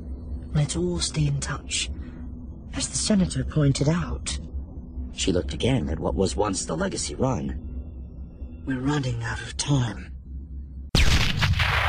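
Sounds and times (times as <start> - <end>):
low hum: 0.0 - 11.8
speech: 0.6 - 2.1, 2.7 - 4.5, 5.2 - 7.7, 8.7 - 10.1
loud explosion with roaring rumbling blast: 11.0 - 11.8.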